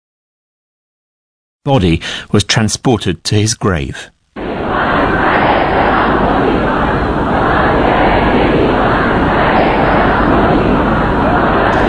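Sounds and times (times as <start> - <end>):
speech: 1.6 - 5.3
large outdoor crowd at a funeral procession: 4.4 - 11.8.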